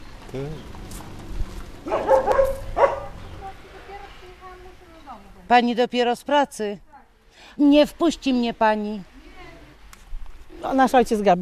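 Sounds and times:
speech: 0.3s - 1.2s, 4.8s - 6.8s, 7.4s - 9.1s, 10.6s - 11.4s
dog barking behind a fence: 1.8s - 3.3s
high yip: 1.9s - 3.2s.

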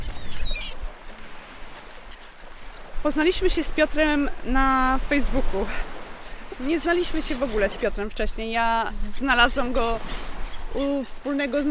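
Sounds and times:
short high seagull cries by the sea: 0.0s - 0.9s
low rumble of wind and water at the seaside: 0.0s - 11.6s
speech: 3.0s - 5.9s, 6.6s - 11.6s.

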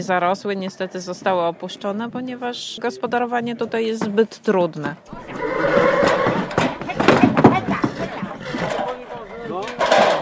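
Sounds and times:
speech: 0.0s - 5.4s
outdoor noise on wet meadows: 0.0s - 10.2s
Polish Konik horses neighing on wet meadows: 5.1s - 10.0s.

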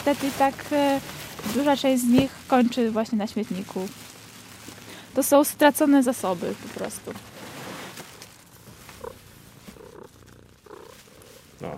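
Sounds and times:
speech: 0.0s - 4.0s, 5.2s - 7.3s
cat purring softly: 8.7s - 11.7s.

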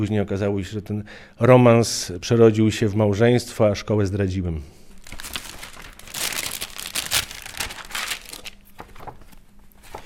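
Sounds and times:
speech: 0.0s - 4.8s
paper photographs rustling in a handled album: 5.0s - 10.0s.

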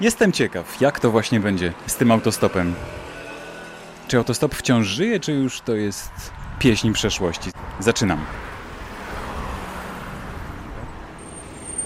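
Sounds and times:
speech: 0.0s - 3.1s, 4.1s - 8.5s
city bus engine rumbling while pulling up at the roadside: 0.7s - 11.8s.

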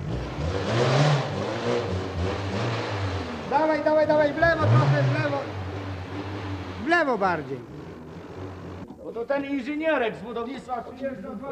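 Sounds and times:
car engine running at low speed while maneuvering: 0.0s - 9.0s
speech: 7.0s - 7.8s, 9.1s - 11.5s.

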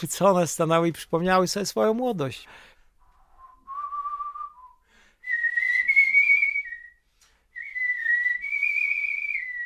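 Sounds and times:
speech: 0.0s - 2.7s
person whistling a melody solo: 3.3s - 9.6s.

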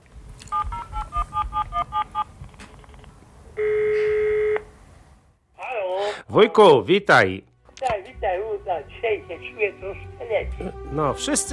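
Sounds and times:
touch-tone beeps dialling an international telephone call: 0.5s - 2.3s
long steady electronic telephone tone: 3.6s - 4.7s
speech: 6.4s - 11.5s.

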